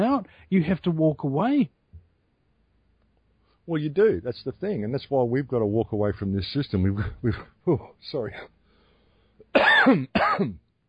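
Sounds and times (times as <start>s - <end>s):
speech: 0.0s - 1.8s, 3.7s - 8.6s, 9.5s - 10.6s
chesty cough: 9.5s - 10.6s.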